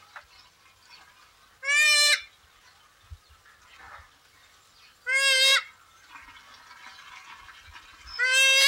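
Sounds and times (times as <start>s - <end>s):
pukeko raucous screeching calls: 1.6s - 2.3s, 8.1s - 8.6s.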